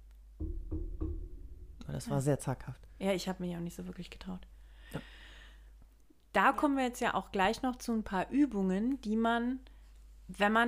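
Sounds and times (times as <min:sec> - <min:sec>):
soft dull knocking on wood: 0:00.4 - 0:01.8
speech: 0:02.0 - 0:05.1, 0:06.4 - 0:09.7, 0:10.3 - 0:10.6.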